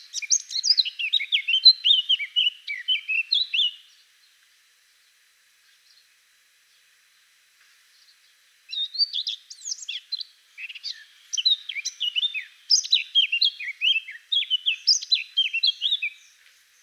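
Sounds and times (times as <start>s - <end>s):
Eurasian blackcap Sylvia atricapilla singing varied warble: 0.0s - 4.1s, 8.0s - 16.8s.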